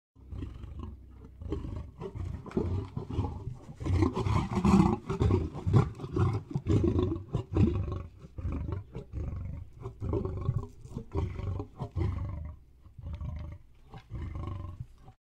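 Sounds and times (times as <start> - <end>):
tiger snarling: 0.2 - 15.2.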